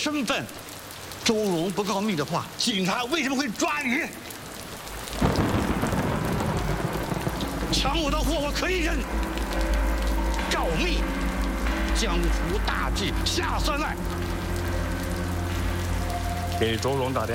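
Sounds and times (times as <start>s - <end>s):
speech: 0.0s - 4.3s, 7.7s - 9.8s, 10.6s - 11.2s, 12.0s - 14.2s, 16.6s - 17.3s
steady dense rain falling outside: 0.0s - 17.3s.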